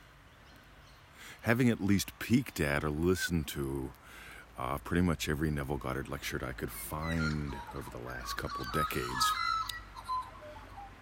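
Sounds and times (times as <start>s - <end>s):
birds chirping in a garden: 0.0s - 10.9s
speech: 1.4s - 9.5s.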